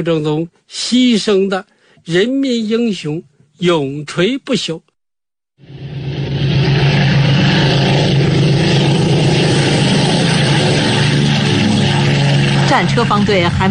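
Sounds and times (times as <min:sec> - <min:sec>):
speech: 0:00.0 - 0:04.9, 0:05.6 - 0:05.9, 0:12.7 - 0:13.6
propeller aircraft formation engines droning overhead: 0:05.6 - 0:13.6.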